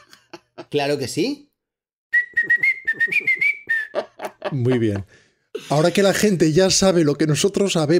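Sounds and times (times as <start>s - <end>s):
speech: 0.7s - 1.5s, 2.4s - 3.6s, 4.5s - 7.9s
person whistling a theme tune: 2.1s - 4.1s
laughter: 3.0s - 6.1s.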